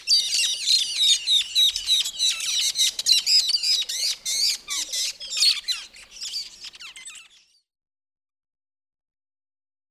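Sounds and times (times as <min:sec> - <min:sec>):
metallic starling calls with harsh squawks and metallic chips: 0:00.0 - 0:07.7.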